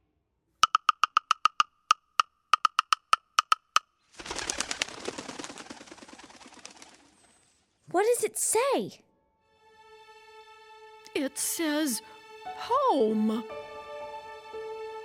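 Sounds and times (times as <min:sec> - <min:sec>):
woodpecker pecking rapidly on wood: 0:00.6 - 0:03.9
speech: 0:07.9 - 0:09.1, 0:11.2 - 0:13.6.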